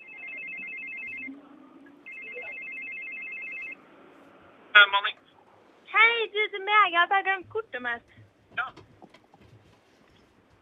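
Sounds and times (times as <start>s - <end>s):
telephone ringtone while placing a call: 0.0s - 1.4s, 2.1s - 3.8s
speech: 4.8s - 5.2s, 6.3s - 8.9s.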